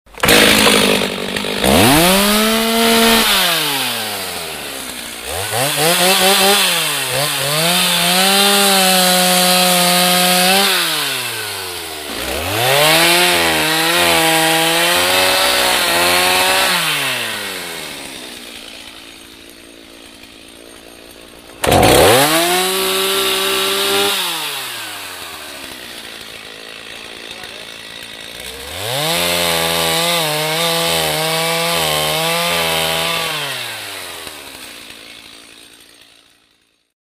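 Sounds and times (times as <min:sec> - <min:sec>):
chainsaw: 0:00.1 - 0:37.0.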